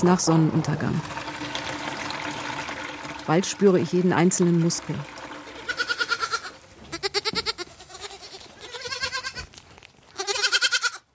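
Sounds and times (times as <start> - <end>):
speech: 0.0 - 1.4, 3.3 - 5.2
young goats and lambs bleating in a wooden stable during lambing season: 5.6 - 11.1.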